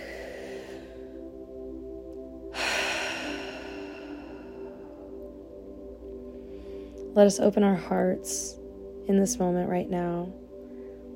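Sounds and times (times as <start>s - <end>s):
slow deep breath in and out: 0.0s - 1.7s, 2.4s - 7.1s, 10.5s - 11.1s
steady low tonal hum: 0.0s - 11.1s
speech: 7.2s - 10.4s.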